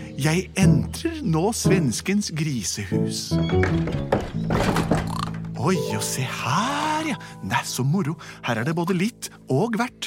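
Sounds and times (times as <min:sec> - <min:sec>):
speech: 0:00.2 - 0:10.0
door opening with thunks and knocks from the latch and frame: 0:03.4 - 0:05.8.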